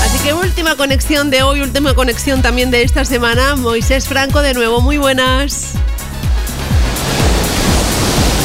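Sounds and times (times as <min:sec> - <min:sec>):
speech: 0:00.2 - 0:06.0
ocean surf washing over a beach: 0:06.3 - 0:08.4.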